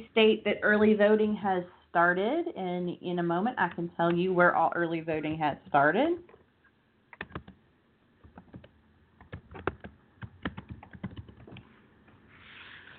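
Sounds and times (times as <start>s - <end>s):
speech: 0.0s - 6.4s
typing on a computer keyboard: 7.2s - 7.6s, 8.2s - 11.6s.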